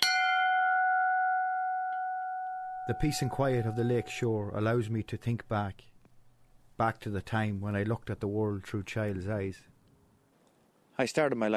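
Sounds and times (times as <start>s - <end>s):
bell beside a lake quay struck to summon a boat: 0.0s - 4.9s
speech: 2.9s - 5.9s, 6.8s - 9.7s, 11.0s - 11.5s.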